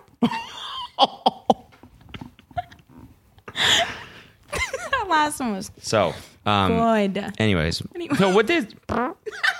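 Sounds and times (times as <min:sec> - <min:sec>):
speech: 0:00.2 - 0:01.2, 0:05.1 - 0:09.5
buzzy fart-like noise with sputtering pops: 0:08.9 - 0:09.2.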